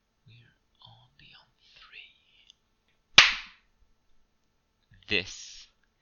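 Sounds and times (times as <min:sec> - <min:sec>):
hard slap: 0:03.2 - 0:03.6
speech: 0:05.1 - 0:05.4.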